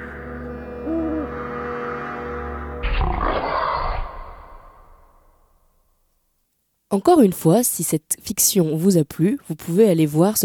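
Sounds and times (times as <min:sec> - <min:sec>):
faint hoot-like call: 0:00.8 - 0:01.5
wolf growling and snarling: 0:02.8 - 0:05.3
speech: 0:06.9 - 0:10.4.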